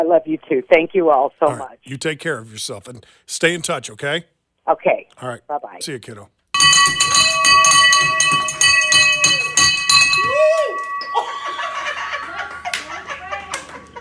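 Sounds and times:
speech: 0.0s - 7.2s
metallic clinking and rattling of a broken bell: 6.6s - 11.2s
handheld bell ringing: 6.6s - 12.1s
laughter: 11.1s - 14.0s.

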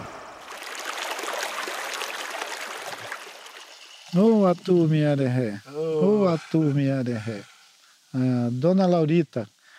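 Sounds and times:
stream water rushing: 0.0s - 7.4s
speech: 4.1s - 7.5s, 8.1s - 9.6s.

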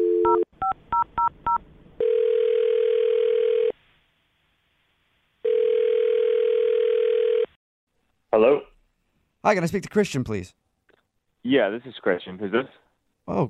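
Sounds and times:
telephone dial tone: 0.0s - 0.5s, 1.5s - 3.7s, 5.4s - 7.6s
speech: 9.4s - 10.6s, 11.4s - 13.4s.

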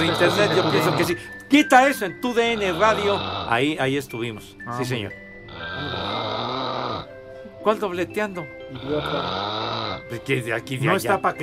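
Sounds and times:
person snoring with a harsh rasping drone: 0.0s - 1.3s, 2.4s - 3.8s, 5.4s - 7.2s, 8.6s - 10.2s
speech: 0.0s - 6.1s, 7.6s - 11.4s.

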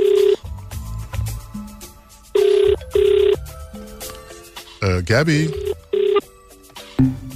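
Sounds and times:
outgoing phone call ringback tone beeps: 0.0s - 0.4s, 2.4s - 3.4s, 5.3s - 6.2s
soft music: 0.0s - 7.3s
speech: 4.8s - 5.6s.

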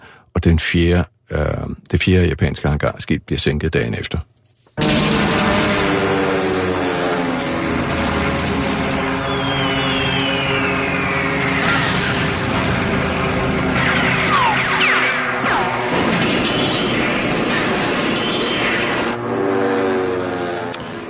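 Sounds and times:
speech: 0.4s - 5.0s
heavy explosions in a war film battle scene: 4.8s - 19.2s
roaring propeller Japanese Zero fighter planes attacking in whining dives: 4.8s - 21.0s.

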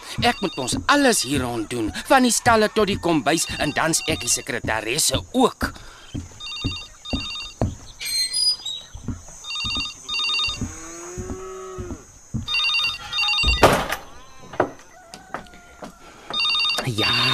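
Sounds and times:
household thumps and knocks: 0.0s - 16.4s
telephone bell ringing in double bursts: 0.1s - 0.8s, 6.4s - 7.6s, 9.5s - 10.6s, 12.5s - 13.7s, 16.3s - 17.3s
speech: 0.2s - 6.3s.

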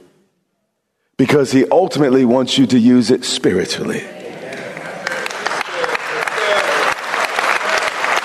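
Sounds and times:
speech: 1.2s - 4.2s
congregation clapping: 4.2s - 8.2s.

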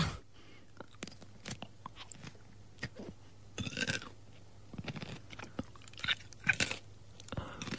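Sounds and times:
crunchy chewing of a pickle: 0.7s - 7.7s.

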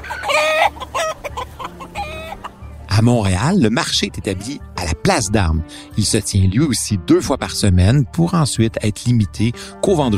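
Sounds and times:
hens clucking: 0.0s - 2.8s
speech: 3.0s - 10.1s.

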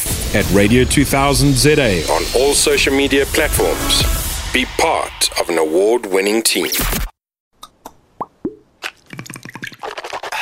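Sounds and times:
speech: 0.3s - 7.1s
mouthwash being poured: 8.8s - 10.3s.

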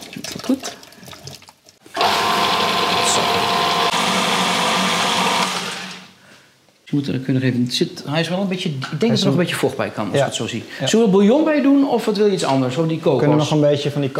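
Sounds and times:
kitchen blender whirring: 1.9s - 6.2s
speech: 6.9s - 14.1s.

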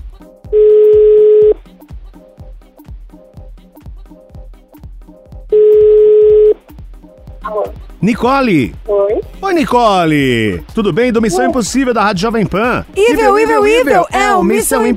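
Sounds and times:
outgoing telephone call ringing tones: 0.6s - 1.6s, 5.6s - 6.6s
speech: 7.5s - 14.9s.

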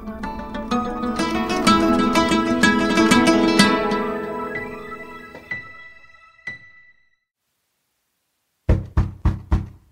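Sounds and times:
musical passage: 0.0s - 7.2s
knocking on a door: 8.7s - 9.8s.

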